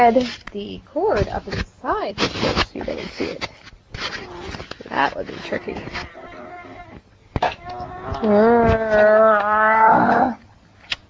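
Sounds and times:
speech: 0.0 - 6.2, 8.2 - 10.4
child growling like an animal: 6.2 - 10.4.

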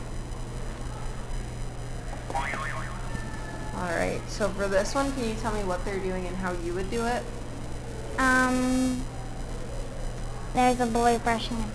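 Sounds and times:
electrical hum: 0.0 - 11.7
pressed buzzer warbling electronic tone: 2.4 - 4.0, 8.2 - 9.1
speech: 4.4 - 7.4, 8.2 - 9.1, 10.6 - 11.7.

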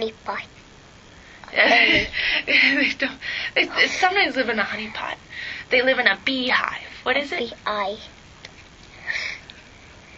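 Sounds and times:
speech: 0.0 - 0.6, 1.5 - 8.1
child sniffling through the nose: 9.0 - 9.5.

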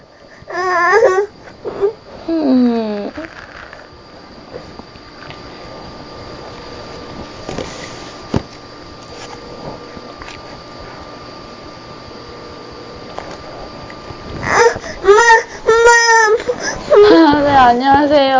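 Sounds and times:
quiet steady hum: 0.0 - 18.3
baby fussing and crying for its mother in short whiny bursts: 0.5 - 2.0, 14.4 - 17.2.

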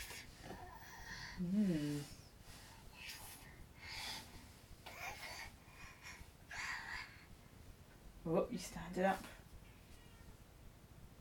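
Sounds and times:
steady hiss: 0.0 - 11.1
speech: 1.4 - 2.2, 8.3 - 9.4
cat meowing: 10.0 - 10.4.

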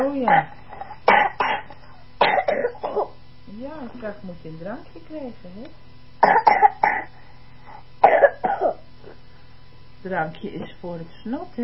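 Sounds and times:
speech: 0.0 - 0.6, 3.5 - 7.3, 10.0 - 11.6
child coughing up phlegm: 0.0 - 3.2, 6.2 - 7.2, 8.0 - 8.9.

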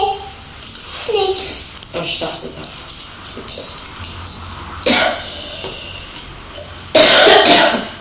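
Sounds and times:
person coughing: 4.8 - 5.8, 6.9 - 8.0.

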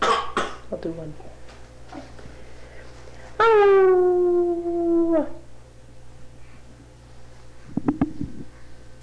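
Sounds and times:
speech: 0.8 - 1.3
person imitating a wolf howl: 3.4 - 5.5.

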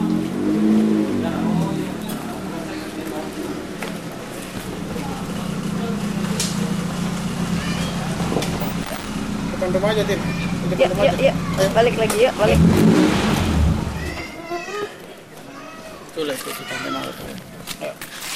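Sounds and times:
car engine rumbling as the vehicle moves past: 0.0 - 3.6, 4.7 - 14.1
faint outdoor noise: 0.0 - 18.3
speech: 9.7 - 13.2.

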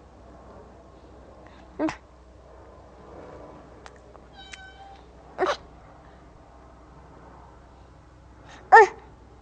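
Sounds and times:
cat meowing: 4.3 - 5.0.

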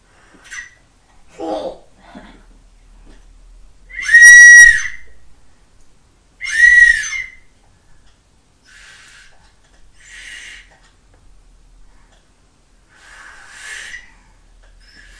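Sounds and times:
child blowing a toy whistle: 3.9 - 5.2, 6.4 - 7.5, 10.0 - 10.7, 13.0 - 14.1, 14.8 - 15.1.

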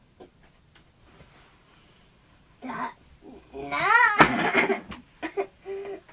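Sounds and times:
child coughing: 4.0 - 4.8.

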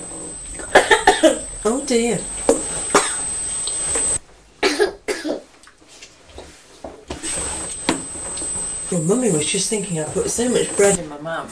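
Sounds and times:
steady hiss: 0.0 - 5.5, 6.8 - 11.5
child coughing in harsh bursts: 0.6 - 1.5, 2.9 - 3.2, 4.6 - 5.5
speech: 1.2 - 2.4, 8.9 - 11.5.

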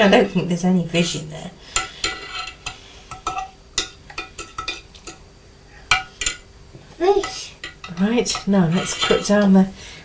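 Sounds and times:
speech: 0.0 - 1.9, 8.0 - 10.0
spoon stirring in a pot: 1.7 - 5.2, 5.8 - 6.5, 7.1 - 9.5.

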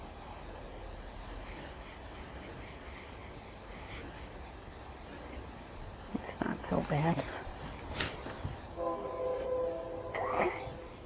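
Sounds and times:
faint outdoor noise: 0.0 - 11.0
speech: 6.7 - 7.4
train whistle blowing a multi-tone blast: 8.8 - 11.0.

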